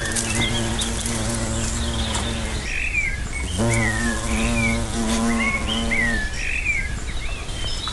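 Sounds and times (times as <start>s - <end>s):
hornet buzzing while feeding on cotoneaster: 0.0s - 2.8s, 3.4s - 6.4s
birds chirping: 0.0s - 7.9s.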